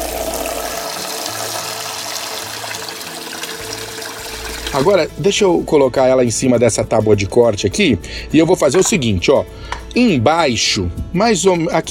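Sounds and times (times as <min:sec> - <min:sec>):
tap water running over large artichokes being washed: 0:00.0 - 0:05.1
speech: 0:04.8 - 0:11.8.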